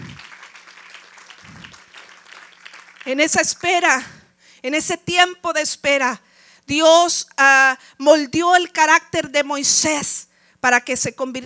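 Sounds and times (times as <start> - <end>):
crowd clapping with rapid hand claps from many people: 0.0 - 3.8
speech: 3.1 - 11.4.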